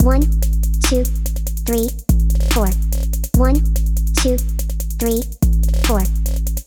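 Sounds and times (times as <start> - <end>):
trap beat: 0.0 - 6.6.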